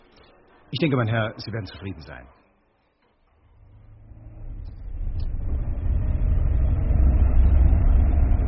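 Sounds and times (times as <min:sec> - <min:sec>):
speech: 0:00.7 - 0:02.4
car engine rumble pulling away on a test drive: 0:03.3 - 0:08.4.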